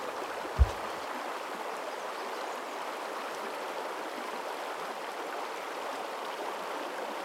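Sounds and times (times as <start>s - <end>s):
creek water rushing: 0.0s - 7.2s
low thump: 0.6s - 0.9s.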